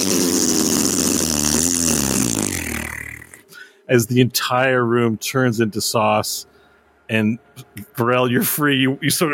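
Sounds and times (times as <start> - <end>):
buzzy wobbling vocal imitation of a big fart: 0.0 - 3.4
speech: 3.9 - 6.5, 7.1 - 9.3.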